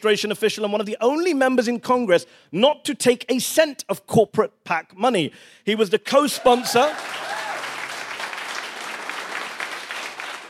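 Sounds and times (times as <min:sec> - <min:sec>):
speech: 0:00.0 - 0:07.3
crowd applauding: 0:06.4 - 0:10.4.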